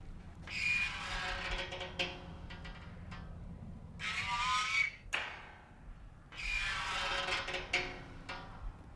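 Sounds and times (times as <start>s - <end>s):
gate spring loop: 0.4s - 8.9s.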